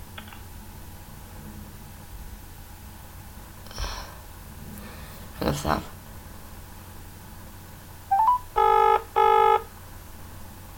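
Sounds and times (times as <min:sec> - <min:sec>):
speech: 0:05.4 - 0:06.0
rising electronic chirp: 0:08.1 - 0:08.5
buzzy harmonic phone ring: 0:08.1 - 0:09.6.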